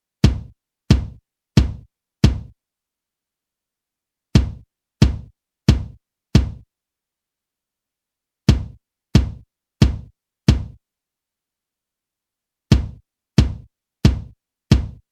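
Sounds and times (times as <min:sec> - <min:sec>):
kick drum with 250Hz boost: 0:00.2 - 0:02.6, 0:04.4 - 0:06.7, 0:08.5 - 0:10.8, 0:12.7 - 0:15.1.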